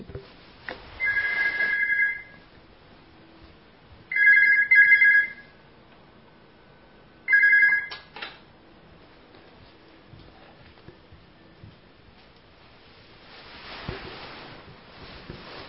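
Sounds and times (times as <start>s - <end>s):
telephone ringing in electronic bursts: 1.0s - 2.4s, 4.1s - 5.6s, 7.2s - 8.1s.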